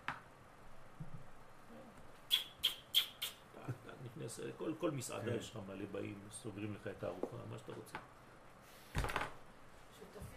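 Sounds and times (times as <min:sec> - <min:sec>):
quiet noise: 0:00.0 - 0:10.3
house sparrow chirping: 0:02.3 - 0:03.4
speech: 0:04.2 - 0:08.2.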